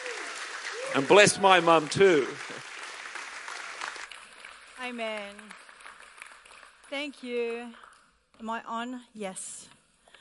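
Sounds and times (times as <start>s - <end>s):
large audience applause: 0.0s - 7.0s
speech: 0.9s - 2.7s, 4.9s - 5.6s, 6.9s - 7.8s, 8.4s - 9.8s.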